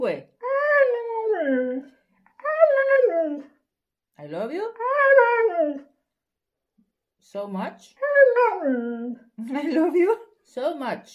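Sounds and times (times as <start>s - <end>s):
dog howling and whimpering: 0.4s - 3.6s, 4.8s - 5.9s, 8.0s - 9.3s
speech: 7.3s - 11.1s.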